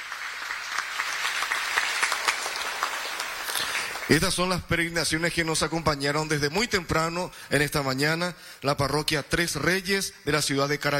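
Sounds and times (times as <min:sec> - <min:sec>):
crowd at a Holy Mass applauding: 0:00.0 - 0:04.6
speech: 0:04.1 - 0:10.9.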